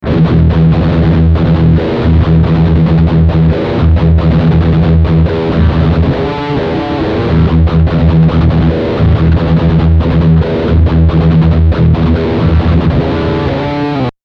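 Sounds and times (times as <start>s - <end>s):
electric guitar shredding on rear humbucker pickup: 0.0s - 14.1s.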